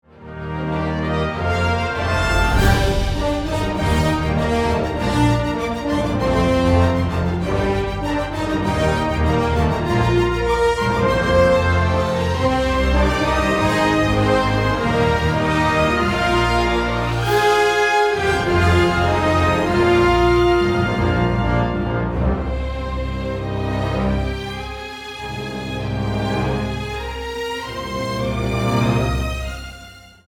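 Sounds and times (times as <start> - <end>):
hovering music composition: 0.2 - 30.0.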